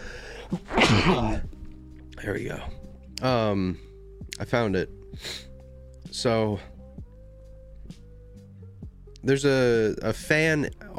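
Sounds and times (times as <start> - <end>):
sneeze: 0.5 - 1.5
speech: 0.9 - 1.5, 2.2 - 5.5, 6.1 - 6.7, 9.2 - 10.9.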